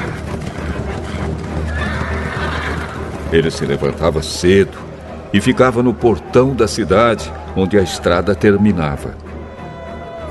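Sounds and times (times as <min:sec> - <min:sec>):
horses neighing and whinnying: 0:00.0 - 0:04.2
horse hooves clip-clopping: 0:00.0 - 0:05.7
speech: 0:03.3 - 0:09.2.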